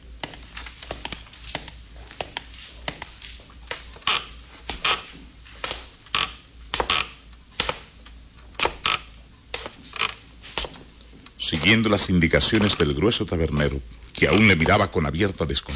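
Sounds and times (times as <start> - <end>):
man's footsteps climbing a worm-eaten old wooden staircase in a tavern: 0.0 - 7.9, 8.5 - 15.0
speech: 11.5 - 15.7.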